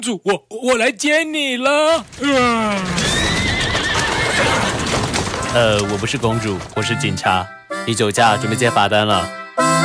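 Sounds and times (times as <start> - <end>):
speech: 0.0 - 3.1, 5.5 - 9.7
clip-clop of horse hooves pulling a carriage: 2.0 - 7.4
horse neighing: 2.3 - 4.9.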